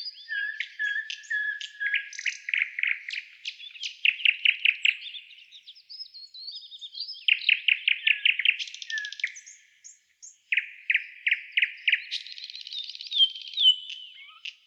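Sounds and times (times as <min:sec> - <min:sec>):
nightingale song with whistles and trills: 0:00.0 - 0:14.6.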